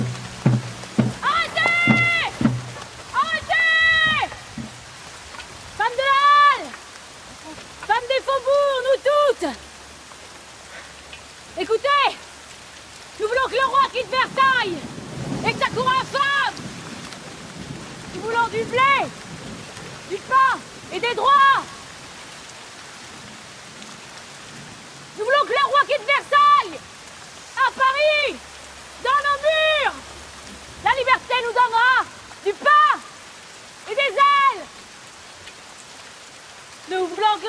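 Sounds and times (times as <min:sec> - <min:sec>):
steady rain: 0:00.0 - 0:37.4
women marching in a dramatized scene calling out: 0:01.2 - 0:02.5, 0:03.1 - 0:04.6, 0:05.8 - 0:06.8, 0:07.4 - 0:09.6, 0:11.6 - 0:12.2, 0:13.2 - 0:14.8, 0:15.4 - 0:16.6, 0:18.2 - 0:19.1, 0:20.1 - 0:21.8, 0:25.2 - 0:26.8, 0:27.5 - 0:28.4, 0:29.0 - 0:30.1, 0:30.8 - 0:33.1, 0:33.8 - 0:34.8, 0:36.9 - 0:37.4.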